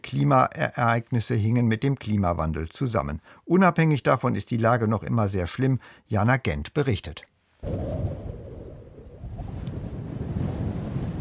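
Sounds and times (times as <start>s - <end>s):
speech: 0.1s - 8.0s
strong wind blowing sand off dunes: 7.6s - 11.1s.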